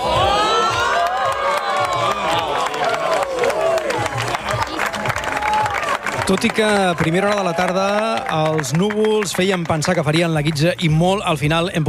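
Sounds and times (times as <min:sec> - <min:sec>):
people shouting and whooping with high excited voices: 0:00.0 - 0:08.7
crowd cheering at an observatory during a solar eclipse: 0:00.0 - 0:10.8
scattered clapping: 0:00.6 - 0:11.0
speech: 0:06.3 - 0:11.8.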